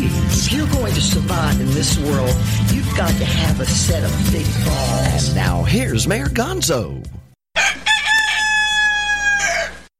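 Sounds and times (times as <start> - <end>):
speech: 0.6 - 7.2
rooster crowing: 7.6 - 9.9.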